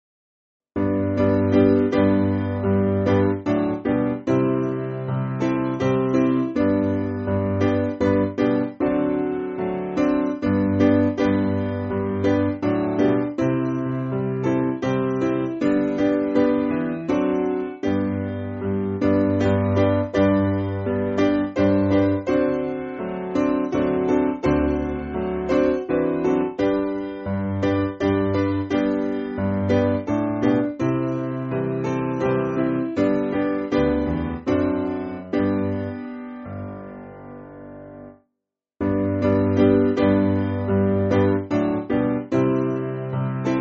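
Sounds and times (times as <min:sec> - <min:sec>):
solo piano piece: 0:00.8 - 0:43.5.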